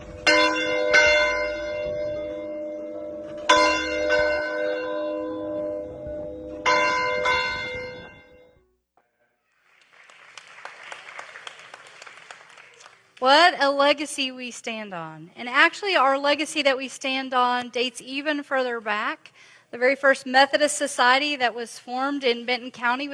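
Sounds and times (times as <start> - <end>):
Methodist church bell ringing: 0.0 - 8.6
crowd applause: 9.5 - 13.2
speech: 13.2 - 23.1.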